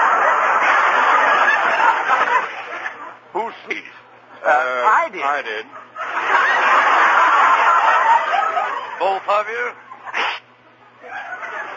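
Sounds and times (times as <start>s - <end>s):
laughter: 0.0s - 11.7s
speech: 4.6s - 6.5s, 9.0s - 9.8s
sneeze: 10.1s - 10.5s.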